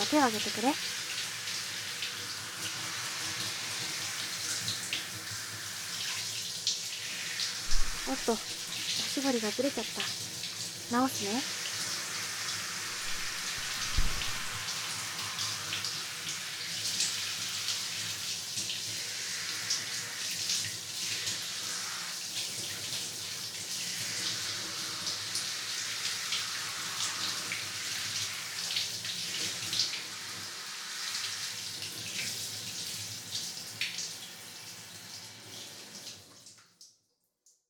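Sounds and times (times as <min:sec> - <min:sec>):
warm water pouring over hair during washing: 0:00.0 - 0:36.4
speech: 0:00.1 - 0:01.1, 0:08.1 - 0:08.6, 0:09.2 - 0:10.2, 0:10.9 - 0:11.6.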